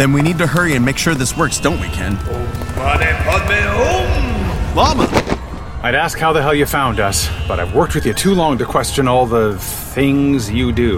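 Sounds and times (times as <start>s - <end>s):
horse hooves clip-clopping: 0.0s - 4.0s
speech: 0.0s - 10.9s.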